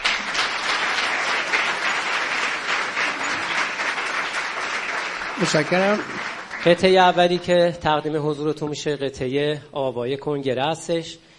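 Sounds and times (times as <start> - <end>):
sustained applause from a large audience: 0.0 - 7.7
speech: 5.4 - 11.3.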